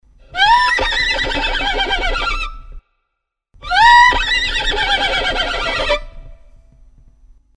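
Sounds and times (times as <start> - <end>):
horse neighing: 0.2 - 2.8, 3.6 - 6.3.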